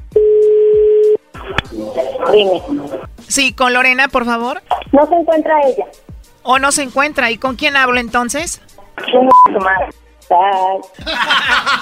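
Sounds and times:
steady unbroken telephone dial tone: 0:00.1 - 0:01.2
speech: 0:01.9 - 0:11.8
laughter: 0:11.0 - 0:11.8.

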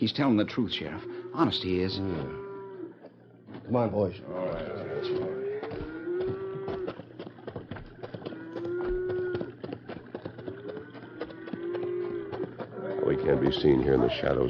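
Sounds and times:
speech: 0:00.0 - 0:02.5, 0:03.7 - 0:05.4, 0:13.2 - 0:14.4
herd of cattle mooing in long drawn-out calls: 0:00.8 - 0:03.1, 0:04.2 - 0:07.0, 0:08.1 - 0:14.4
cattle hooves clattering and shuffling: 0:02.8 - 0:14.4.

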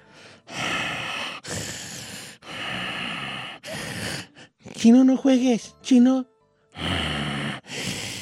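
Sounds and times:
voice imitating heavy snorting breaths: 0:00.0 - 0:04.8, 0:06.8 - 0:08.2
speech: 0:04.8 - 0:06.3.

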